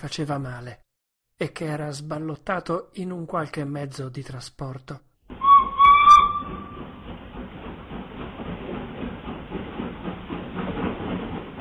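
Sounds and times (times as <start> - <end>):
speech: 0.0 - 0.8, 1.4 - 5.1
rumbling clattering train: 5.3 - 11.5
shrill steam locomotive whistle: 5.4 - 6.8.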